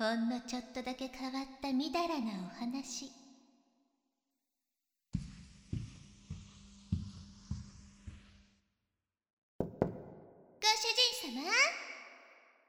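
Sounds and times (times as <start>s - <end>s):
speech: 0.0s - 3.2s, 11.2s - 11.9s
deep resonant knocks on a heavy door: 5.2s - 8.3s, 9.6s - 10.3s
high youthful voice speaking: 10.6s - 12.1s.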